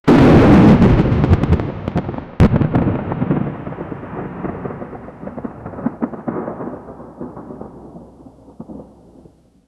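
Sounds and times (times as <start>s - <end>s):
massive chaotic thunder in a storm: 0.1s - 9.5s.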